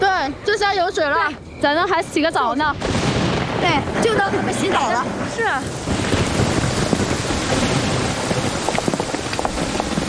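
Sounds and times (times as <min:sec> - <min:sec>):
speech: 0:00.2 - 0:03.0, 0:03.6 - 0:06.0
steady rain pattering on a surface: 0:02.8 - 0:10.0.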